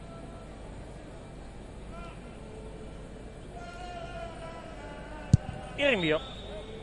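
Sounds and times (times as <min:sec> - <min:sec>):
quiet hollow stadium ambience: 0:00.0 - 0:06.8
sharp thud of a kicked ball: 0:05.3 - 0:05.7
speech: 0:05.8 - 0:06.3.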